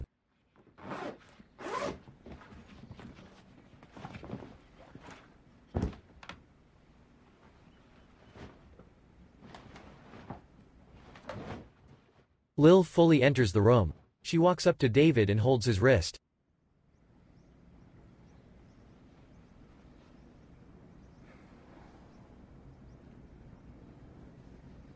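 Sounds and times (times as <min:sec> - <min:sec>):
bag being zipped up: 0:00.8 - 0:02.0
speech: 0:12.6 - 0:16.2.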